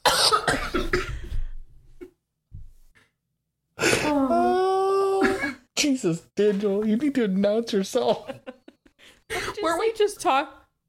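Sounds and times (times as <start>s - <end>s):
person coughing fit: 0.0s - 1.3s, 5.2s - 5.7s
strained wheezy vocal sound: 3.8s - 5.4s
speech: 6.0s - 8.6s, 9.3s - 10.6s
faint breaths: 8.9s - 9.7s.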